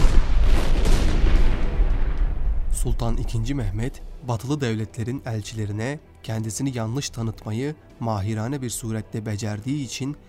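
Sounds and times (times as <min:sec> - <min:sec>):
cannon fire sinking a ship carrying barley in the Bosphorus: 0:00.0 - 0:03.7
speech: 0:02.8 - 0:10.2.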